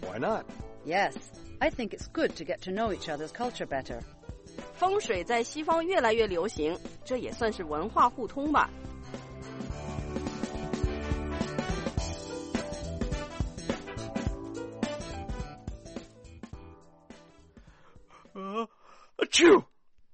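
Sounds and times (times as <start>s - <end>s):
busy music: 0.0s - 18.2s
speech: 0.1s - 8.9s
short drawn-in breath before a sneeze: 17.5s - 19.2s
single loud sneeze: 18.3s - 19.7s.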